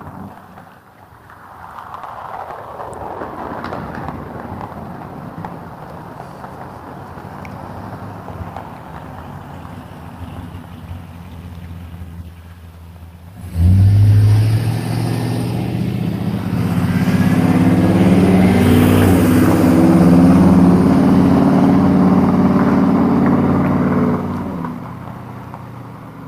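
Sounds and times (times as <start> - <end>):
truck engine passing by on a sunny morning: 6.2 - 26.2.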